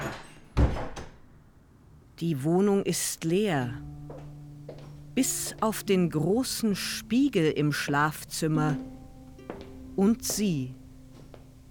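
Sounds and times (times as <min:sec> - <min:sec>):
apartment door pulled shut with heavy low thud: 0:00.0 - 0:01.2
speech: 0:02.2 - 0:03.9, 0:05.2 - 0:08.9, 0:10.0 - 0:10.8.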